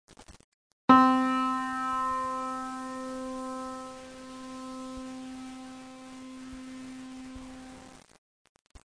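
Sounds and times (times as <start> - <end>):
piano note C: 0.9 - 7.9.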